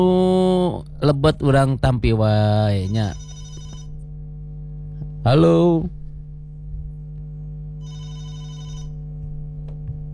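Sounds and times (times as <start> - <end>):
speech: 0.0 - 3.3, 5.2 - 6.0
steady low hum: 0.0 - 10.1
telephone ringing with an incoming call: 2.9 - 4.0, 7.8 - 9.0.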